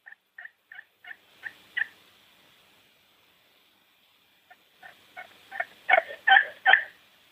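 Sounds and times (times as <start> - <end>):
turkey hen yelps imitated on a slate call: 0.0 - 1.9, 4.5 - 7.0.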